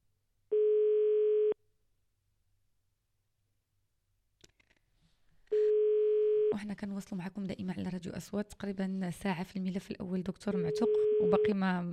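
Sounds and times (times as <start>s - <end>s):
telephone ringback tone on a call line: 0.5s - 1.6s, 10.7s - 11.5s
speech: 6.6s - 11.9s.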